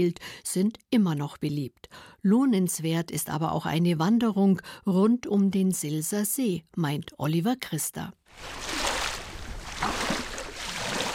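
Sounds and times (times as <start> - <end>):
speech: 0.0 - 8.8
waves lapping on a lake shore: 8.3 - 11.1.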